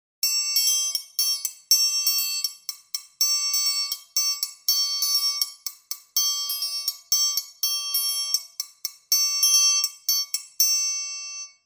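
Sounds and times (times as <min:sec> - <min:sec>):
ferrinhos triangle: 0:00.2 - 0:11.6.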